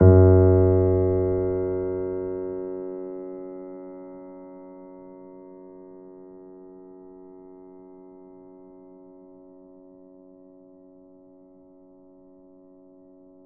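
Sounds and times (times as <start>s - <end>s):
grand piano F#1 note played softly: 0.0s - 3.1s.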